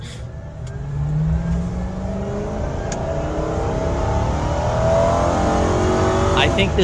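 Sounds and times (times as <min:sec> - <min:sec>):
Crown Victoria patrol car engine revving: 0:00.0 - 0:06.8
speech: 0:06.6 - 0:06.8.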